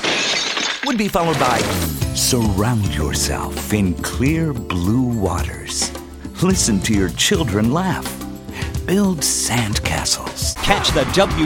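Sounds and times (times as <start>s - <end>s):
window glass shattering: 0.0s - 2.0s
speech: 0.8s - 8.2s, 8.9s - 11.4s.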